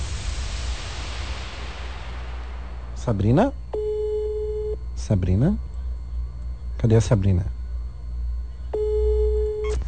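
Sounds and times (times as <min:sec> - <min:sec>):
steady hiss: 0:00.0 - 0:03.7
speech: 0:03.1 - 0:03.7, 0:05.1 - 0:05.7, 0:06.8 - 0:07.6
messaging app call ringing tone: 0:03.7 - 0:04.8, 0:08.7 - 0:09.7.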